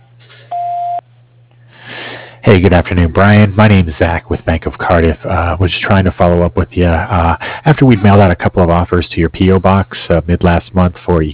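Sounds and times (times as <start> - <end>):
faint constant low hum: 0.0 - 11.3
voicemail tone beep: 0.5 - 1.0
speech: 2.4 - 11.3.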